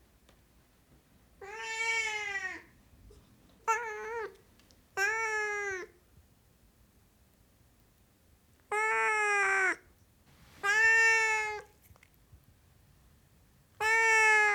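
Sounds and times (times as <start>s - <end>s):
Siamese cat yowling meows: 1.4s - 2.7s, 5.0s - 5.9s, 8.7s - 9.8s, 10.6s - 11.7s, 13.8s - 14.5s.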